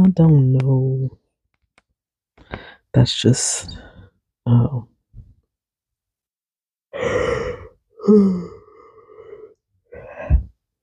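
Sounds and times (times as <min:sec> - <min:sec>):
speech: 0:00.1 - 0:01.2, 0:02.9 - 0:03.9, 0:04.5 - 0:04.9, 0:07.0 - 0:08.6
person yawning: 0:07.0 - 0:10.5.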